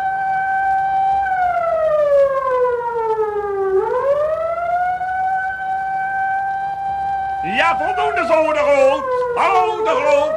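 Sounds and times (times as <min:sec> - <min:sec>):
old fire engine siren wailing as a burglar alarm demonstration: 0:00.0 - 0:10.3
speech: 0:07.7 - 0:10.3.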